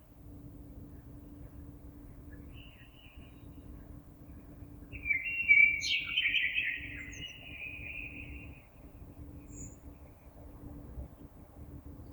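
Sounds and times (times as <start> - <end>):
soft background hum: 0.0 - 12.1
common blackbird singing a rich fluting phrase: 5.0 - 8.5.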